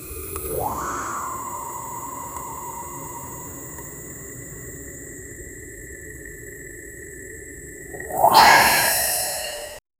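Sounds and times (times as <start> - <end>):
soft sound of gas rising: 0.1 - 5.6, 7.9 - 9.8.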